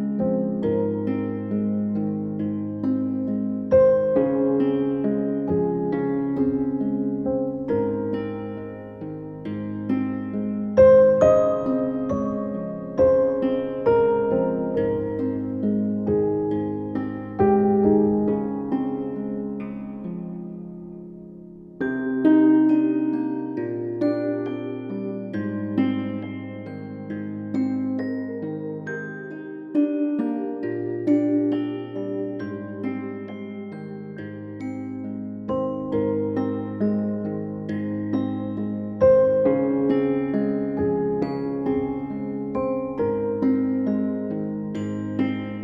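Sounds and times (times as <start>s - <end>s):
fantasy music: 0.2s - 45.6s.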